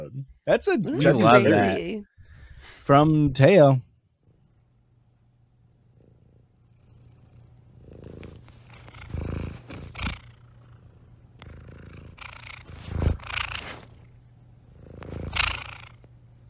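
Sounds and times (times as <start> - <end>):
speech: 0.5 - 3.8
cat purring: 4.2 - 16.4.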